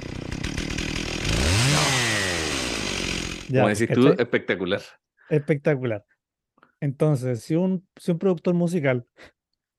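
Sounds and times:
person whistling an imitation of a chainsaw: 0.0 - 3.5
speech: 3.5 - 6.1, 6.8 - 9.4.

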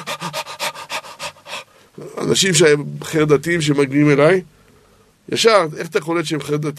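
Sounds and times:
person imitating rapid panting breaths of a stressed person: 0.0 - 1.9
speech: 2.2 - 4.6, 5.3 - 6.7.

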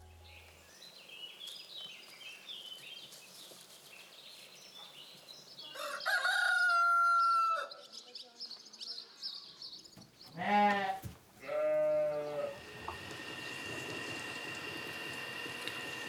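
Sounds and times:
outdoor background: 0.0 - 16.0
rooster crowing: 5.7 - 7.7
farm animals bleating: 10.3 - 12.6.

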